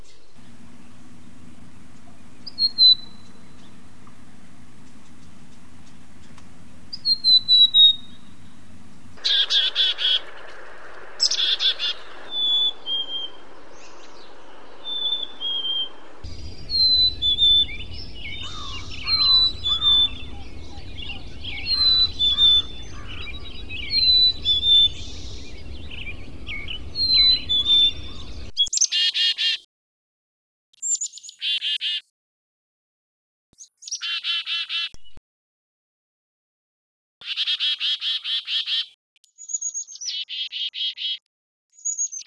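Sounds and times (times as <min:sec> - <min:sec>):
chickadee call variation: 0:02.0 - 0:03.8, 0:05.8 - 0:08.4, 0:09.2 - 0:29.6, 0:33.8 - 0:35.0, 0:37.2 - 0:41.2.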